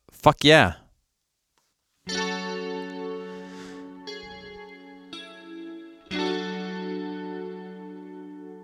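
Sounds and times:
speech: 0:00.2 - 0:00.8
distorted electric guitar power chords as a song intro: 0:02.1 - 0:08.6.

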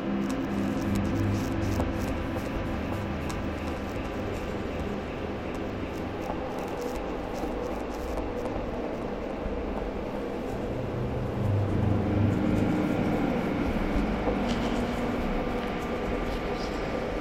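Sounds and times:
low rumbling drone like machinery or traffic filtering in from outside: 0:00.0 - 0:17.2
steady indoor hum at the office: 0:00.0 - 0:17.2.

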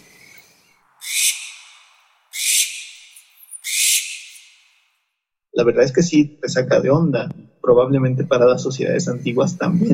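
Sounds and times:
owl screeching at night: 0:00.0 - 0:05.0
speech: 0:05.6 - 0:09.9.

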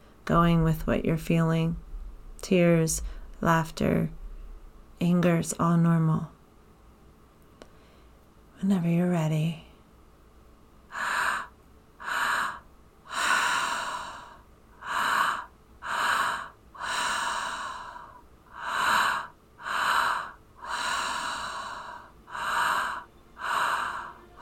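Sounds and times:
speech: 0:00.3 - 0:04.2, 0:05.0 - 0:06.4, 0:08.6 - 0:09.6
deep rhythmic breathing with sharp gasping inhales and drawn-out exhales: 0:10.9 - 0:24.4.

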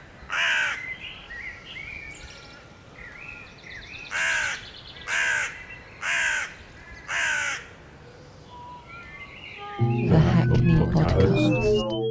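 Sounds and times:
faint birdsong: 0:00.0 - 0:10.5
crow cawing: 0:00.3 - 0:00.8, 0:04.1 - 0:07.7
laughter: 0:09.8 - 0:12.0.

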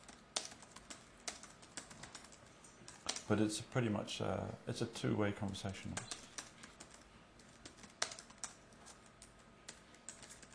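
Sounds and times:
typing on a computer keyboard: 0:00.0 - 0:03.3, 0:05.5 - 0:10.5
speech: 0:03.3 - 0:06.2.

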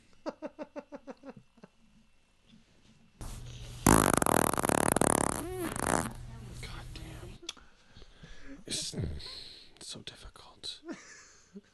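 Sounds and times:
fart: 0:03.8 - 0:06.2.

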